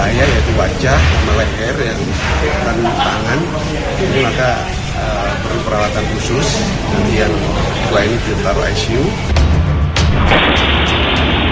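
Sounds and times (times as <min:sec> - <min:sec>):
explosion roaring blast inside a shoe store in Surabaya, East Java: 0:00.0 - 0:04.0, 0:09.8 - 0:11.5
speech: 0:00.2 - 0:09.4, 0:10.2 - 0:11.2
laughter: 0:02.2 - 0:05.5.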